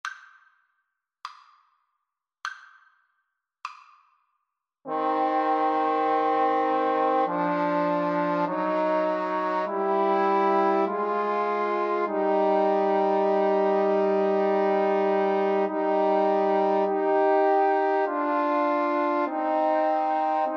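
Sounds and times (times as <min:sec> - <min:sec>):
trombone trio playing an aequale: 0:04.9 - 0:20.5.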